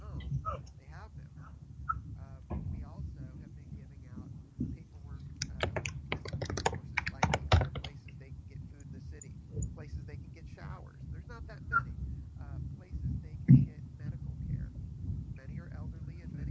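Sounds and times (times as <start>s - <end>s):
low talking: 0.0s - 14.7s, 15.3s - 16.4s
keyboard typing of an email message: 5.3s - 8.2s.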